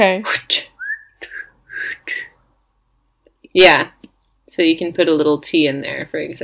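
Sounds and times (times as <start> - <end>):
speech: 0.0 - 0.6, 3.6 - 4.0, 4.6 - 6.4
person whistling a word in a whistled language: 0.8 - 2.2.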